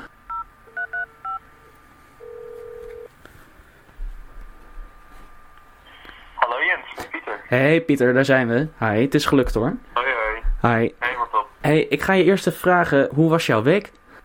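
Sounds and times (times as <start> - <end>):
telephone touch-tone keypad beeps: 0.3 - 1.4
steady telephone line tone: 0.3 - 3.1
speech: 7.5 - 9.9, 10.6 - 11.0, 11.6 - 14.0.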